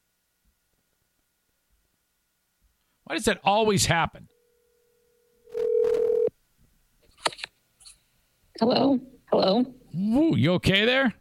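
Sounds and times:
speech: 3.1 - 4.4, 8.6 - 11.1
outgoing phone call ringing tone: 4.3 - 6.3.

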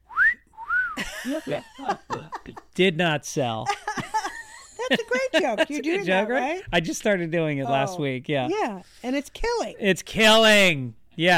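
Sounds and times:
voice imitating a badly designed personal safety whistle: 0.1 - 1.0
laughter: 1.0 - 2.8, 3.6 - 6.5
speech: 1.2 - 3.8, 4.9 - 11.3.

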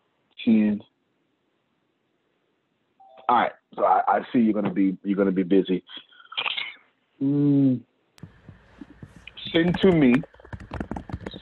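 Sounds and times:
speech: 0.4 - 0.9, 3.3 - 6.1, 7.2 - 7.9, 9.5 - 10.8
short tonal vocal sounds: 3.2 - 7.8
typing on a keyboard: 9.3 - 11.4.

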